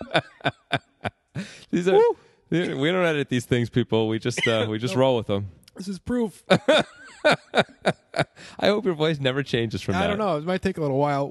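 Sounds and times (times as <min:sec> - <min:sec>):
laughter: 0:00.0 - 0:01.1, 0:04.4 - 0:05.0, 0:06.5 - 0:08.6
speech: 0:00.1 - 0:00.8, 0:01.4 - 0:11.2
strained voiced gasp: 0:01.4 - 0:02.4
person coughing after water went down the wrong way: 0:04.4 - 0:04.8.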